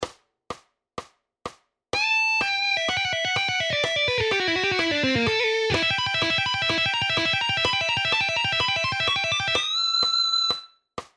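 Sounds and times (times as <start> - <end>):
rock guitar solo: 2.0 - 9.9.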